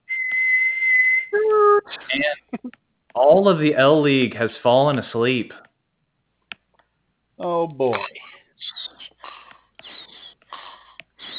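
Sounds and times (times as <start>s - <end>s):
whistle blown to start play: 0.0s - 1.4s
speech: 3.3s - 5.6s, 7.4s - 8.2s.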